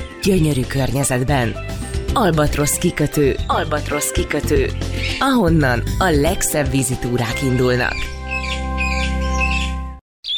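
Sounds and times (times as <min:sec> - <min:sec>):
speech: 0:00.2 - 0:08.5
birds chirping by the Tisza river in Tiszafüred: 0:07.8 - 0:10.3.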